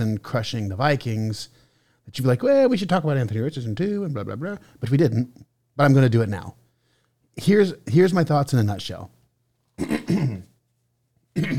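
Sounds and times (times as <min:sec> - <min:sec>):
speech: 0:00.0 - 0:06.6, 0:07.4 - 0:09.2, 0:09.8 - 0:10.5, 0:11.4 - 0:11.5
man clearing his throat: 0:09.8 - 0:10.6, 0:11.3 - 0:11.5.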